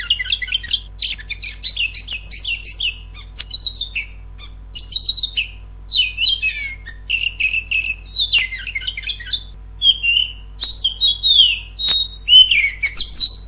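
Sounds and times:
Oriental magpie-robin whistled song: 0.0s - 13.4s
faint steady low hum: 0.0s - 13.4s.

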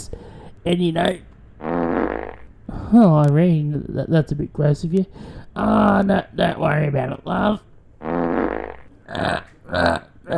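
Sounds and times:
speech: 0.6s - 1.7s, 2.9s - 8.2s, 9.1s - 10.3s
fart blamed on drinking wine: 1.6s - 2.5s, 8.0s - 9.4s.

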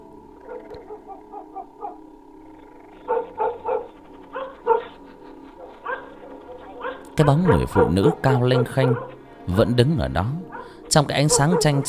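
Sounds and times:
dog barking frantically inside a house: 0.5s - 2.0s, 3.1s - 5.0s, 5.6s - 9.2s, 10.5s - 11.8s
speech: 7.2s - 11.8s.

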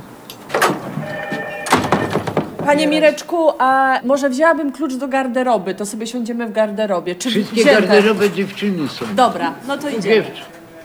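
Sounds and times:
door opening: 0.4s - 3.0s
door squeal: 0.6s - 2.8s
speech: 2.6s - 10.6s.

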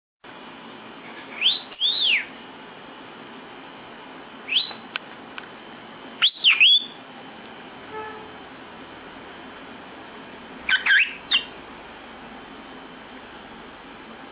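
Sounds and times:
lovebird making squeaky chirps: 1.3s - 2.4s, 4.4s - 4.8s, 6.2s - 7.0s, 10.7s - 11.6s.

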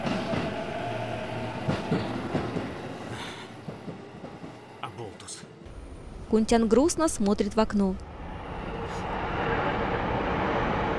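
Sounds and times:
train pulling away from a platform with rolling rumble: 0.0s - 10.9s
faint clacks from train wheels: 1.5s - 4.6s
speech: 6.3s - 8.1s.

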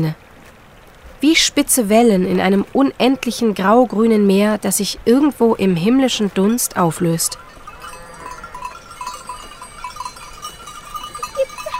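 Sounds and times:
speech: 0.0s - 0.2s, 1.2s - 7.4s
light ringing tones: 7.2s - 11.7s
dark brown and white sheep bleating on a Swiss alpine slope: 7.4s - 8.9s.

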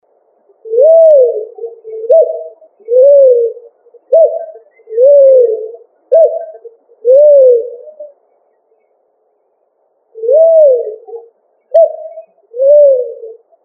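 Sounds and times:
pigeon cooing: 0.6s - 8.2s, 10.2s - 13.5s.

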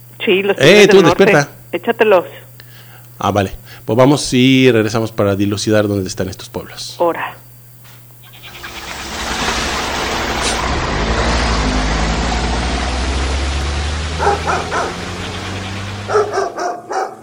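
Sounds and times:
speech: 0.2s - 2.4s, 3.2s - 7.4s
steady low engine rumble: 8.0s - 16.5s
tied-up female dog barking: 14.1s - 15.2s, 16.0s - 17.2s.

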